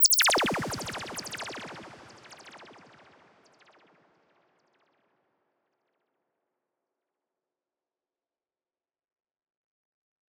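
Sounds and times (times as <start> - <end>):
blaster shots: 0.0 - 3.0.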